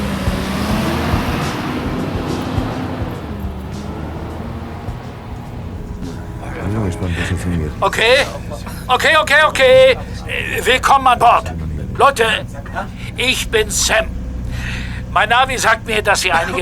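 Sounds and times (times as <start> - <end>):
bus engine rumbling as the bus pulls away: 0.0 - 16.5
bus tires rolling on loose ground: 0.0 - 16.5
laughter: 1.9 - 16.5
voices: 5.0 - 16.5
speech: 7.4 - 14.2, 15.1 - 16.5.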